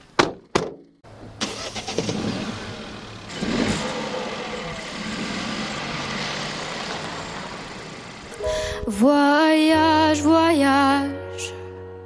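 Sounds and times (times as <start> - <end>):
road and engine rumble of a car driving steadily: 0.0 - 9.1
car engine cranking, starting and revving: 1.4 - 8.5
speech: 8.9 - 11.5.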